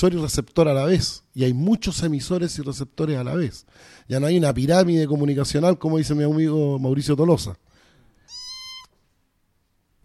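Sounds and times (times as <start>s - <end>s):
speech: 0.0s - 7.7s
new female cat meowing in a house: 8.3s - 9.0s.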